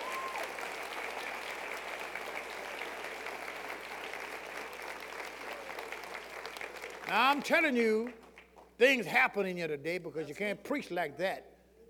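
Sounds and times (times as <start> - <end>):
audience clapping: 0.0 - 8.8
speech: 7.1 - 8.2, 8.8 - 11.5.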